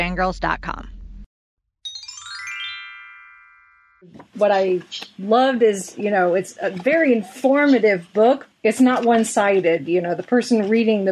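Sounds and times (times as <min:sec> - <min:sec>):
speech: 0:00.0 - 0:00.9, 0:04.0 - 0:11.1
bright shimmering transition chime with tinkling tones: 0:01.9 - 0:04.0.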